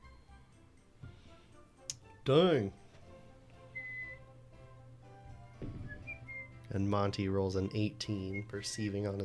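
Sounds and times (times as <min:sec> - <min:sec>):
speech: 0:02.3 - 0:02.8, 0:06.8 - 0:09.2
thin whistle: 0:03.7 - 0:04.3, 0:05.8 - 0:06.7, 0:08.2 - 0:09.0.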